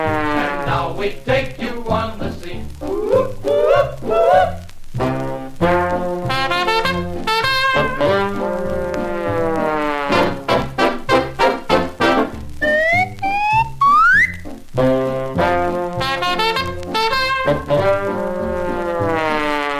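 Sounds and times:
lively band playing: 0:00.0 - 0:04.2, 0:05.0 - 0:19.7
loud whistle rising in pitch in upward glides: 0:12.6 - 0:14.4.

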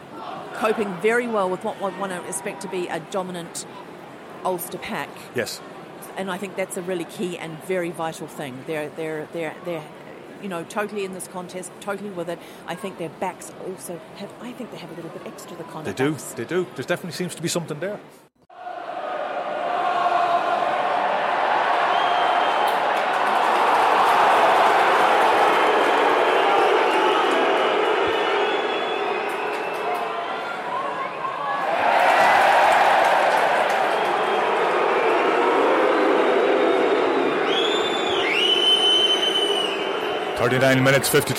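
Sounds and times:
speech: 0:00.6 - 0:18.2, 0:40.6 - 0:41.3
rugby stadium crowd roaring and cheering: 0:18.5 - 0:41.3
shrill whistles: 0:26.8 - 0:31.3, 0:36.6 - 0:40.4.

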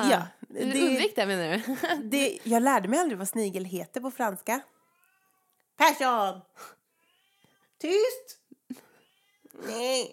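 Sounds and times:
speech: 0:00.0 - 0:04.8, 0:05.8 - 0:06.8, 0:07.8 - 0:08.8, 0:09.6 - 0:10.1
cat meowing: 0:04.7 - 0:05.6, 0:07.0 - 0:07.7, 0:09.0 - 0:09.8.

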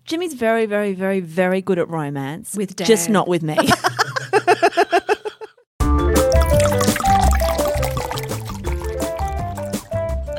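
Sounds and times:
speech: 0:00.1 - 0:05.0
upbeat music: 0:06.1 - 0:10.1
sparkling Moscato wine glugging from a bottle into a glass: 0:06.3 - 0:09.9.

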